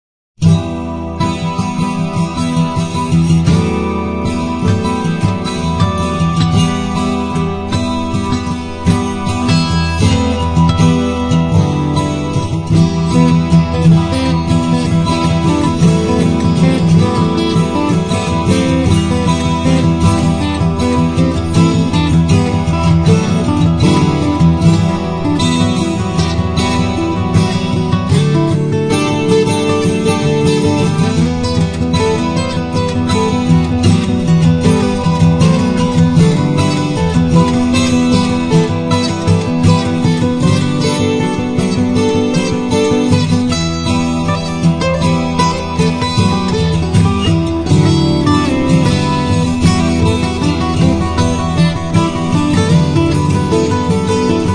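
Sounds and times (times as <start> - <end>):
guitar: 0.4 - 54.5.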